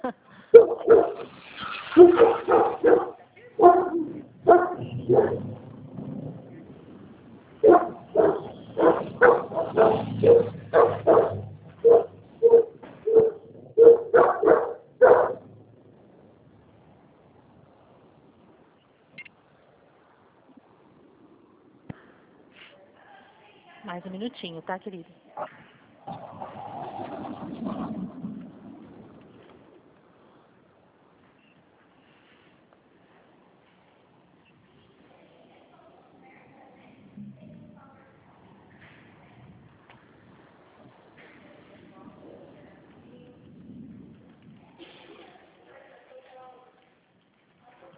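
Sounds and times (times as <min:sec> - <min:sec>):
several dogs barking: 0:00.5 - 0:05.5, 0:07.6 - 0:15.5
speech: 0:24.4 - 0:25.2.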